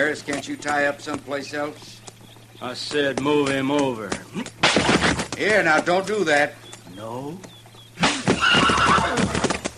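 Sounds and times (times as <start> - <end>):
speech: 0.0 - 2.0, 2.6 - 7.6
horse hooves stamping and clattering: 0.0 - 9.7
horse at a hitch rack whinnying after being struck: 8.0 - 9.6.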